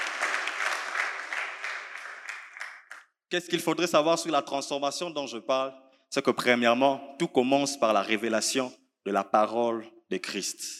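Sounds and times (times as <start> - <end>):
church congregation applauding during a worship service: 0.0 - 3.1
speech: 3.3 - 10.7.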